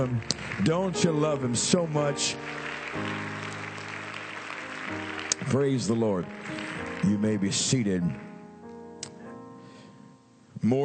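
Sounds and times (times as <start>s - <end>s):
speech: 0.0s - 3.5s, 4.9s - 8.3s, 10.6s - 10.8s
large crowd clapping: 0.0s - 8.4s.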